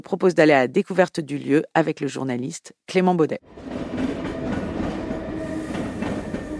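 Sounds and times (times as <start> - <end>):
speech: 0.0 - 4.1
train rumbling past a platform at Lausanne railway station: 3.5 - 6.5.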